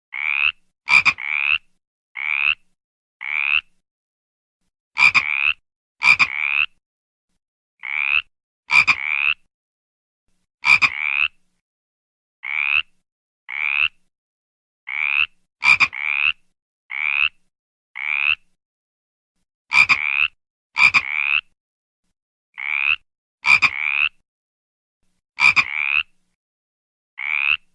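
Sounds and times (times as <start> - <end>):
frog: 0.2 - 3.8, 5.0 - 6.8, 7.8 - 9.5, 10.6 - 11.4, 12.4 - 14.0, 14.9 - 18.5, 19.7 - 21.6, 22.6 - 24.2, 25.4 - 26.2, 27.2 - 27.7.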